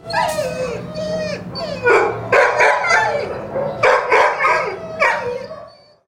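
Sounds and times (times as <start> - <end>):
dogs whining: 0.0 - 6.0.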